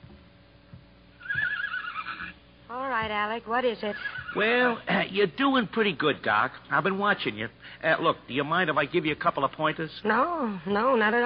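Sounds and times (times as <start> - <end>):
horse whinnying in a high-pitched neigh: 1.2 - 2.4, 3.8 - 4.8
soft low thuds of hooves shifting: 1.2 - 3.3
speech: 2.7 - 11.2.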